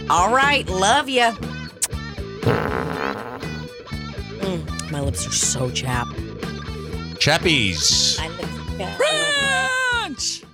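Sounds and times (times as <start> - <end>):
speech: 0.1 - 1.6, 5.0 - 6.5, 7.2 - 10.5
buzzy flapping fart sound effects: 2.4 - 3.7.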